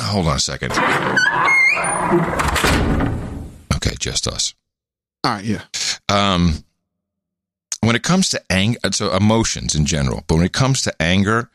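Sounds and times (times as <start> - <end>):
speech: 0.1 - 3.2, 3.8 - 4.6, 5.2 - 6.7, 7.8 - 11.5
door squealing on its hinges: 0.7 - 3.7.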